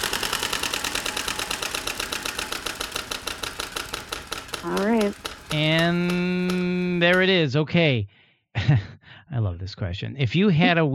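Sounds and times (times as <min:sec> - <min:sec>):
prize wheel being spun with ratcheting clicks: 0:00.0 - 0:07.3
speech: 0:04.6 - 0:10.9.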